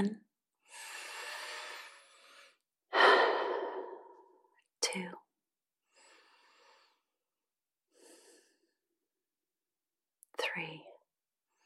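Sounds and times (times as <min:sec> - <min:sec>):
speech: 0:00.0 - 0:00.2, 0:05.0 - 0:05.2, 0:10.6 - 0:10.9
deep breath in and out during a guided relaxation exercise: 0:00.6 - 0:04.5, 0:05.9 - 0:07.2, 0:07.9 - 0:08.8.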